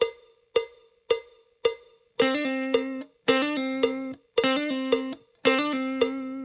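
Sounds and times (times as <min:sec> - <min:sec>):
blues guitar playing: 0:02.2 - 0:06.4.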